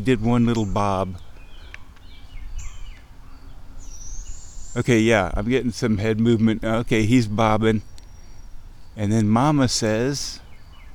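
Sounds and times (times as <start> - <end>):
speech: 0.0 - 1.3, 4.8 - 7.9, 9.0 - 10.4
low outdoor rumble: 0.0 - 10.9
baby owl squeaky squeeing calls: 1.4 - 4.8, 7.8 - 9.0.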